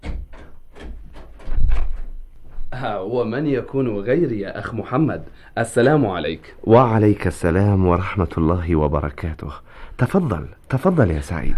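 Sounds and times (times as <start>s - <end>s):
door opening as a visitor enters: 0.0s - 3.3s
speech: 2.7s - 11.5s.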